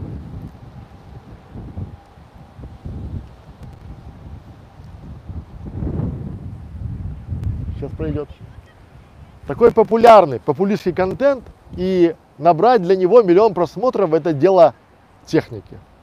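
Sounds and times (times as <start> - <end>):
wind buffeting a microphone in low rumbling gusts: 0.0 - 12.3
speech: 7.8 - 8.6, 9.5 - 15.9.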